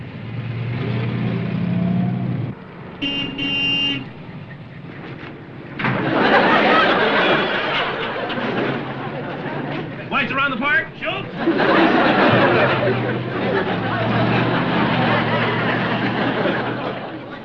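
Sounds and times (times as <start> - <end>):
car engine running and revving: 0.0 - 10.1, 11.3 - 17.4
car horn toot: 3.0 - 4.2, 7.0 - 8.2
laughter: 5.8 - 17.4.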